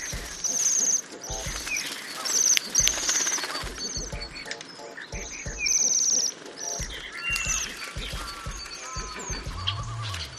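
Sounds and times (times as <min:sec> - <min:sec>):
Bohemian waxwing flock ringing trill calls: 0:00.0 - 0:10.3.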